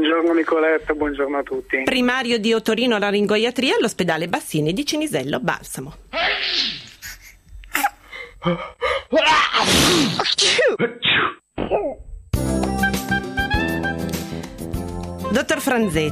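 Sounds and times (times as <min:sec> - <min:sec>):
speech: 0:00.0 - 0:06.8, 0:08.4 - 0:12.0, 0:15.3 - 0:16.1
person sneezing: 0:06.2 - 0:08.0, 0:09.3 - 0:12.0
sharp gasping inhalations: 0:06.5 - 0:09.1
music: 0:12.3 - 0:16.1.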